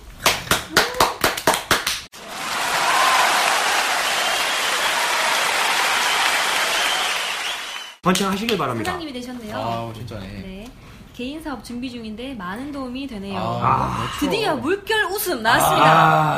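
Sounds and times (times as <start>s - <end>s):
sharp handclaps: 0.2s - 9.0s
loud dense crowd applause: 0.5s - 8.3s
speech: 8.1s - 16.3s.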